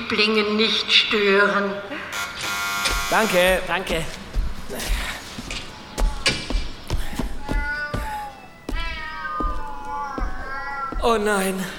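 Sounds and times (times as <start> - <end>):
speech: 0.1 - 2.2, 3.1 - 5.0, 11.0 - 11.7
sharp taps and thumps: 2.8 - 11.2
several cats meowing on the stairs: 5.8 - 11.7.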